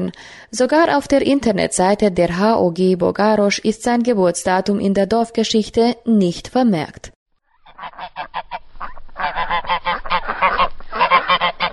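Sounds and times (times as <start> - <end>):
speech: 0.0 - 7.2
geese honking in a puddle in a village on a sunny day: 7.5 - 11.7.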